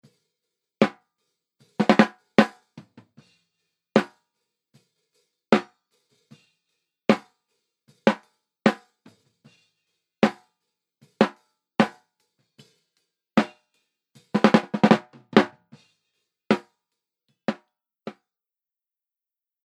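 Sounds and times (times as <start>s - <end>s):
snare drum send: 1.7s - 3.4s, 4.0s - 4.2s, 7.1s - 7.4s, 8.0s - 9.6s, 10.2s - 10.5s, 11.1s - 12.1s, 13.4s - 16.8s.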